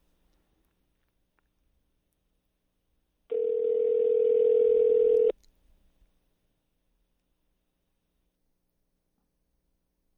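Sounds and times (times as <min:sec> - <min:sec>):
ringback tone from an outgoing phone call: 0:03.3 - 0:05.3.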